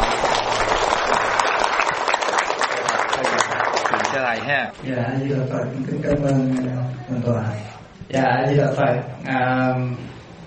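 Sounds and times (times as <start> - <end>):
crowd applauding: 0.0 - 4.7
speech: 4.4 - 10.2.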